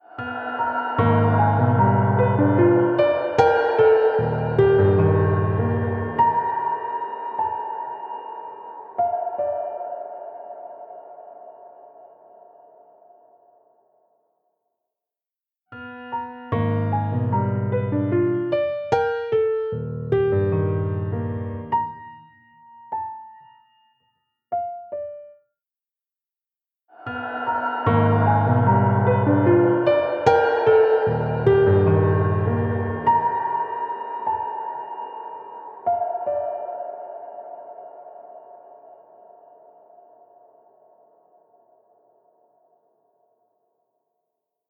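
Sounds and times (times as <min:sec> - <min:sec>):
piano playing: 0:00.0 - 0:10.2, 0:15.8 - 0:24.0, 0:27.0 - 0:37.4.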